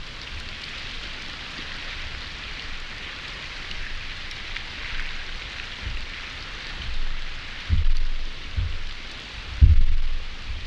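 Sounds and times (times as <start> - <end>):
looped rain: 0.0 - 10.6.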